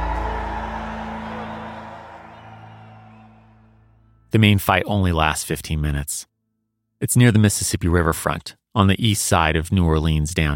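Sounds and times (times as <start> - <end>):
massed rebel yell battle cry of many voices whooping and shrieking: 0.0 - 3.6
speech: 4.3 - 6.3, 7.0 - 10.5.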